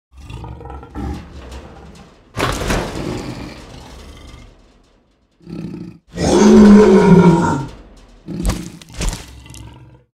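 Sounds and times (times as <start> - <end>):
deathclaw creature exiting a cage: 0.1 - 10.1.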